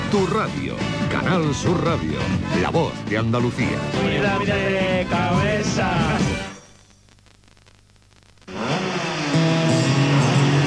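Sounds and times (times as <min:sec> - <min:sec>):
speech: 0:00.1 - 0:06.5
racing car engine roaring: 0:08.5 - 0:10.6.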